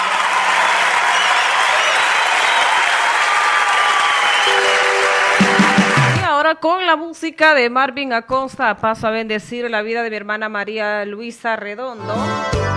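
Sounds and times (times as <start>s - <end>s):
crowd applauding loudly: 0.0s - 6.3s
speech: 6.5s - 12.6s.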